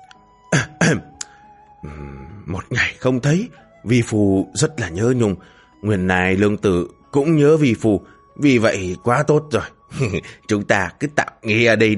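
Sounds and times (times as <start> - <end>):
dry throat-clearing coughs: 0.5 - 1.2, 9.9 - 10.4
speech: 0.9 - 1.1, 1.8 - 11.9.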